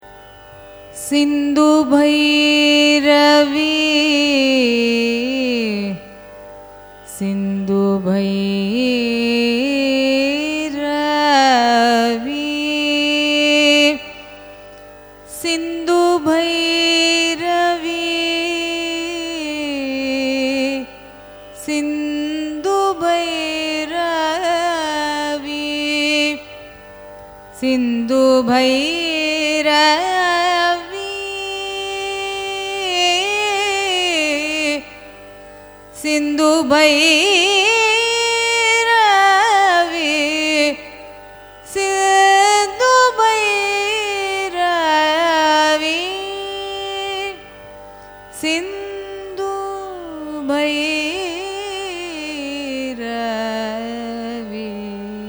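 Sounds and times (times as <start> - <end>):
Carnatic music signature in raga Sindhu Bhairavi: 0.0 - 55.2.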